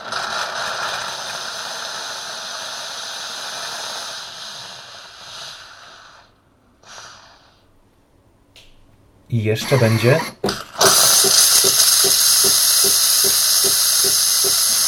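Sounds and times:
coffee machine milk frother purging with steam: 0.0 - 7.6, 9.6 - 14.8
speech: 9.3 - 10.7
coffee machine mechanical whirring: 9.6 - 14.8.

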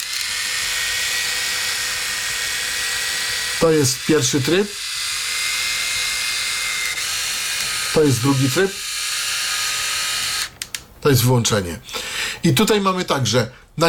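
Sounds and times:
electric shaver running in slow and fast mode: 0.0 - 10.6
speech: 3.6 - 4.8, 8.0 - 8.8, 11.0 - 13.8.

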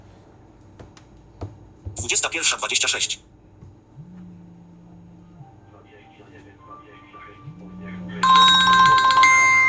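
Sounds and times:
low steady hum: 0.0 - 9.6
speech: 2.1 - 3.3
mobile phone ringtone for an incoming call: 8.2 - 9.6.

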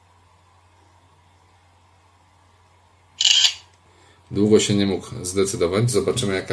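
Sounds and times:
faint steady hum: 0.0 - 6.5
synthetic smartphone camera shutter click in auto mode: 3.2 - 3.7
speech: 4.3 - 6.5.

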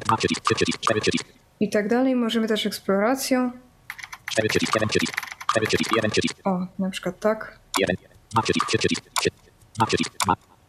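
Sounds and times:
rapid keystrokes on a keyboard entering a password: 0.0 - 1.3, 3.9 - 6.4, 7.8 - 10.4
speech: 0.1 - 3.7, 4.3 - 10.5.

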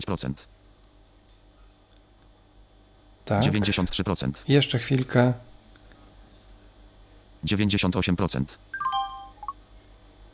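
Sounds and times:
speech: 0.0 - 0.6, 3.3 - 5.5, 7.4 - 9.0
iPhone notification sound of two bright electronic blips: 8.8 - 9.6.

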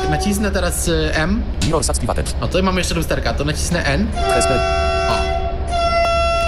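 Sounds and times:
vehicle horn blaring in a transport simulator video game: 0.0 - 0.8, 4.1 - 6.4
low engine rumble in a transport simulator video game: 0.0 - 6.4
speech: 0.1 - 5.3.

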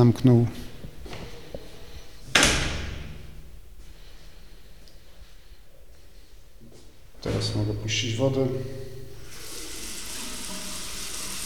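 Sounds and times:
speech: 0.0 - 0.6, 7.4 - 8.8
bathroom door opening click: 2.3 - 3.2.

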